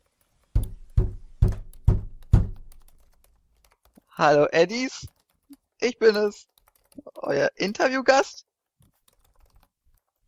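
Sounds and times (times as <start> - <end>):
heavy footsteps on a hard floor: 0.6 - 2.6
speech: 4.2 - 5.2, 5.8 - 8.5.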